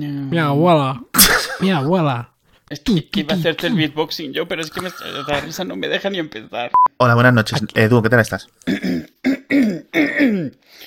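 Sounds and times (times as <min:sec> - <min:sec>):
speech: 0:00.0 - 0:10.8
person clearing throat: 0:01.2 - 0:01.9, 0:04.8 - 0:05.6, 0:08.6 - 0:10.6.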